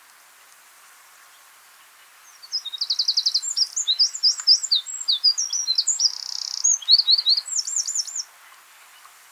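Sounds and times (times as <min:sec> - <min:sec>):
Eurasian wren singing: 0:02.5 - 0:08.2.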